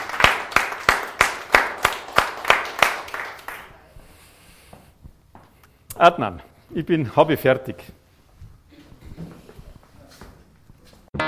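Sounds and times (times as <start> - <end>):
audience applauding: 0.0 - 3.8
group clapping in a steady even rhythm with a slight echo: 0.0 - 3.9
speech: 6.0 - 8.0.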